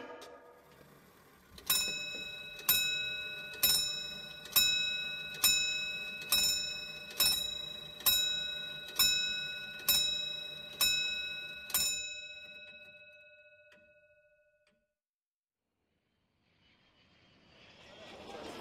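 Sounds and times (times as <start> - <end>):
clock striking deep ringing gong chimes: 1.6 - 12.9.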